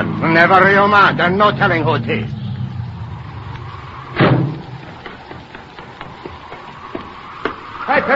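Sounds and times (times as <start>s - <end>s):
speech: 0.0s - 2.4s, 7.9s - 8.1s
car engine idling: 0.0s - 7.2s
loud thud: 3.6s - 5.2s.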